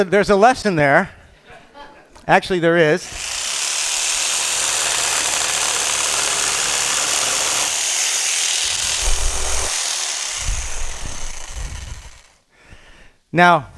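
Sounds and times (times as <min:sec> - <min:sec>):
speech: 0:00.0 - 0:01.2, 0:02.3 - 0:03.3, 0:13.3 - 0:13.7
plugged-in electric saber saw running: 0:03.1 - 0:12.4.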